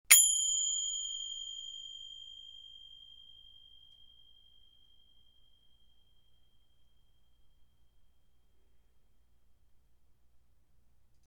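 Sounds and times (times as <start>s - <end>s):
thick finger cymbals: 0.1s - 6.6s.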